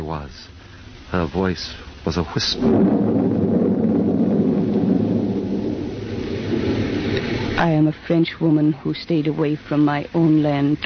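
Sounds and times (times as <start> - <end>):
faint hiss of rain or wind: 0.0 - 10.8
speech: 0.1 - 3.2, 7.6 - 10.8
deep heavy continuous thunder rumbling: 2.4 - 8.6.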